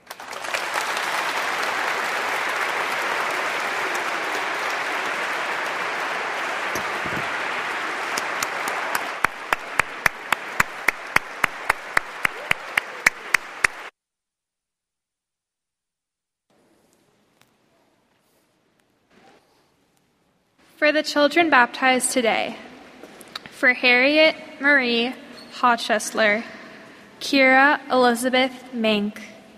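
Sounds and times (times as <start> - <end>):
audience applauding: 0.0 - 13.9
speech: 20.9 - 22.6, 23.6 - 26.6, 27.2 - 29.3.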